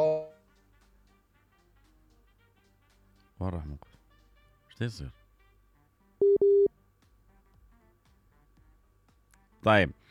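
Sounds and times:
speech: 3.4s - 4.0s, 4.8s - 5.2s, 9.6s - 10.0s
incoming telephone call electronic beeps: 6.2s - 6.7s.

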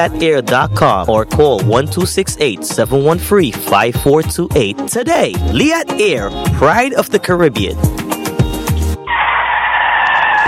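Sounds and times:
speech: 0.0s - 8.0s
car tires skidding on the road with almost no grip: 8.4s - 10.4s.

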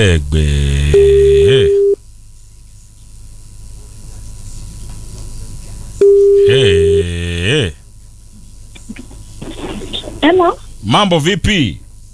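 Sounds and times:
speech: 0.0s - 1.2s, 10.4s - 11.8s
telephone call ringing tone: 0.9s - 2.0s, 6.0s - 7.2s.

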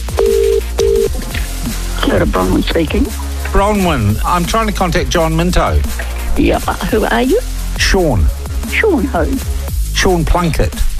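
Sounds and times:
telephone ringback tone on an outgoing call: 0.1s - 1.1s
speech: 2.2s - 10.9s.

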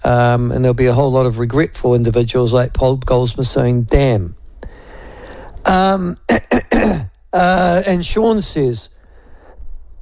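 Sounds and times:
speech: 0.1s - 4.4s, 5.6s - 9.0s
voiced throat clearing: 6.2s - 7.2s
sharp rasping coughs: 6.3s - 7.2s.

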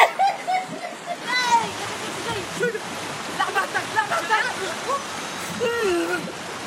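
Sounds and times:
rushing splashing water like a surging wave: 0.0s - 6.6s.

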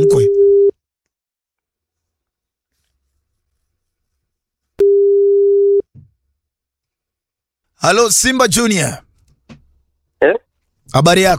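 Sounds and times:
telephone ringback tone as a call is placed: 4.8s - 5.8s
speech: 7.8s - 9.1s, 10.2s - 11.3s.

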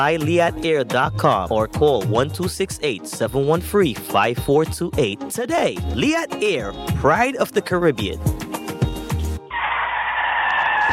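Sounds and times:
speech: 0.0s - 8.4s
car tires screeching in a skid during a near accident: 9.5s - 10.9s.

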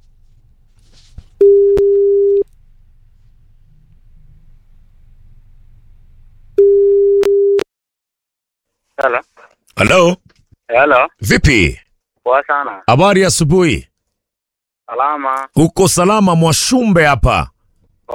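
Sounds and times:
telephone ringback tone while calling: 1.4s - 2.4s, 6.6s - 7.6s
speech: 9.0s - 13.9s, 14.9s - 17.5s.

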